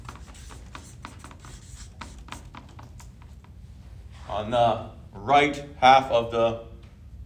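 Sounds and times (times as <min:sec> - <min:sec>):
pen strokes writing a word on a page: 0:00.0 - 0:03.4
speech: 0:04.3 - 0:06.7.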